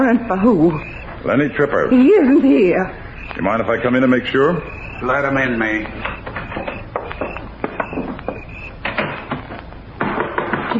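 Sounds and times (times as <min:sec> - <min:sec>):
speech: 0:00.1 - 0:06.2
knocking on a back door: 0:05.9 - 0:10.7.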